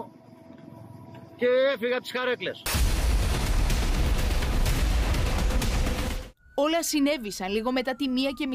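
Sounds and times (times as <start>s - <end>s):
speech: 1.4s - 2.8s, 6.6s - 8.5s
large industrial factory explosion rumble and roar: 2.7s - 6.4s
sharp crackling bursts from industrial explosion: 2.7s - 6.4s.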